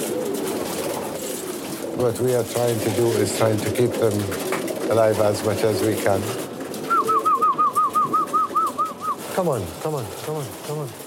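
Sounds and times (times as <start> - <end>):
very old retired racing pigeons cooing: 0.0 - 11.0
speech: 2.0 - 6.5, 9.4 - 11.0.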